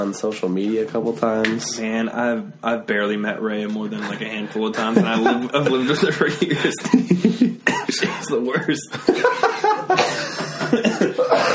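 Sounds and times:
speech: 0:00.0 - 0:10.9
laughter: 0:03.9 - 0:11.5
loud fit of harsh coughing: 0:07.4 - 0:08.4, 0:09.9 - 0:11.5.

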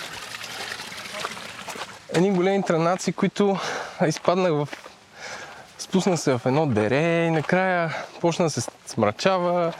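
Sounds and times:
water running and splashing from an outdoor drinking fountain: 0:00.0 - 0:02.6
speech: 0:02.1 - 0:04.9, 0:05.8 - 0:09.7.

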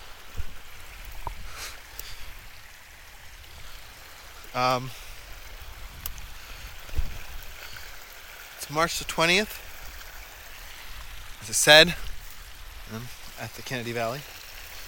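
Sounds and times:
water rushing and sloshing as someone moves straight through it: 0:00.0 - 0:14.8
speech: 0:04.5 - 0:05.0, 0:08.7 - 0:09.6, 0:11.4 - 0:12.0, 0:12.9 - 0:14.4.

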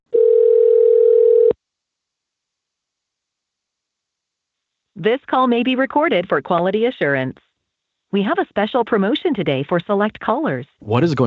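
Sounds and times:
telephone dial tone while placing a call: 0:00.1 - 0:01.6
speech: 0:05.0 - 0:07.5, 0:08.1 - 0:11.2.

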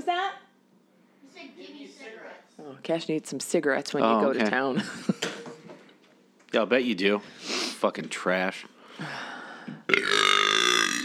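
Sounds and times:
speech: 0:01.4 - 0:05.2, 0:06.5 - 0:09.3, 0:09.9 - 0:10.4
loud drawn-out burp: 0:09.9 - 0:11.0.

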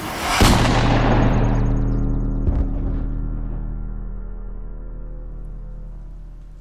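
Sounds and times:
large gun firing: 0:00.2 - 0:01.8, 0:02.4 - 0:03.7.

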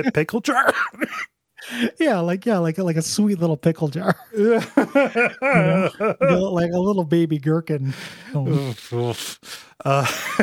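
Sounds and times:
speech: 0:00.0 - 0:10.4
person coughing rough voiced coughs: 0:00.5 - 0:01.3
laughter: 0:04.1 - 0:06.6, 0:09.9 - 0:10.4.

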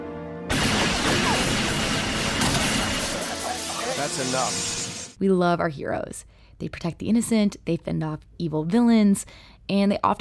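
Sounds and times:
dense continuous gunfire barrage: 0:00.5 - 0:05.2
speech: 0:04.1 - 0:10.2.

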